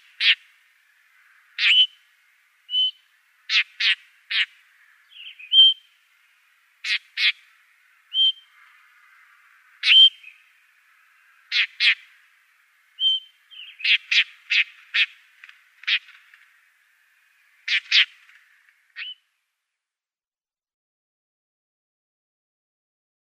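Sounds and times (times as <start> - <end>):
Blackstart calling short sharp notes: 1.5 - 2.0, 2.7 - 6.0, 8.1 - 8.7, 9.8 - 10.5, 11.5 - 12.1, 13.0 - 15.2, 19.0 - 19.3
Blackstart brief clear whistled notes: 2.7 - 4.0, 5.2 - 5.9, 8.1 - 8.5, 13.0 - 14.3.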